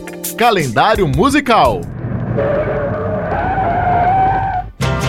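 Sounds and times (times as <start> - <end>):
speech: 0.4 - 2.6
car engine rumbling: 0.6 - 4.8
tires screeching as a fast-moving car brakes hard: 1.8 - 5.0.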